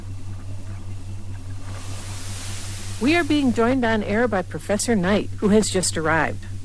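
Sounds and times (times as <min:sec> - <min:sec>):
deep metallic hum from a cooling metal sphere: 0:00.0 - 0:06.6
soft hiss: 0:01.4 - 0:06.6
speech: 0:03.0 - 0:06.5.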